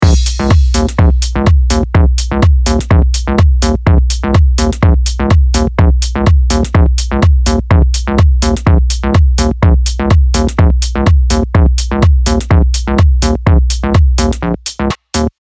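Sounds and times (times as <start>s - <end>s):
bass with low fundamental cut: 0.0s - 15.3s.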